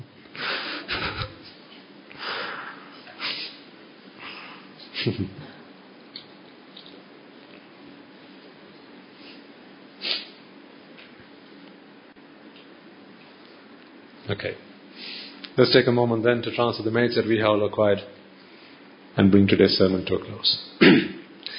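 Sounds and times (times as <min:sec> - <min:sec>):
speech: 0:05.0 - 0:05.5, 0:14.3 - 0:14.7, 0:15.6 - 0:18.2, 0:19.2 - 0:21.0
person coughing: 0:20.8 - 0:21.2
throat-clearing: 0:20.8 - 0:21.3.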